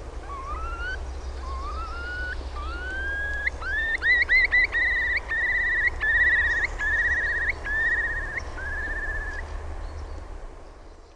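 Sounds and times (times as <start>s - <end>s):
low rumbling background noise: 0.0s - 11.1s
Eurasian curlew bubbling call: 0.2s - 9.4s.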